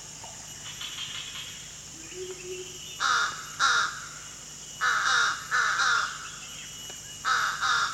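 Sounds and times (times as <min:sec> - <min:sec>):
slender-billed crow hoarse cawing at Danum in Borneo: 0:03.0 - 0:04.0, 0:04.8 - 0:06.2, 0:07.2 - 0:07.9.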